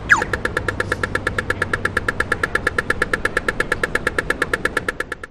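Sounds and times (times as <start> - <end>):
Brisbane CBD pedestrian crossing beep indicator: 0.1 - 5.2.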